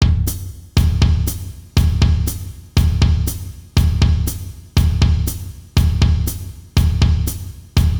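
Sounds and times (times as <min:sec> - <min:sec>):
baiao rhythm: 0:00.0 - 0:07.9.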